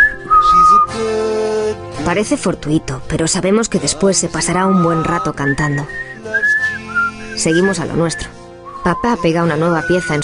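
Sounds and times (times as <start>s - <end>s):
short whistle through pursed lips: 0.0s - 0.9s, 4.6s - 10.2s
speech: 2.1s - 6.1s, 7.4s - 10.2s.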